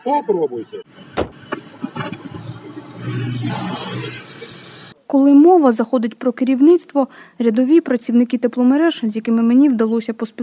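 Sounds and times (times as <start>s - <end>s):
speech: 0.0s - 1.3s, 3.0s - 4.4s, 5.1s - 10.4s
car door thudding shut: 1.2s - 1.6s.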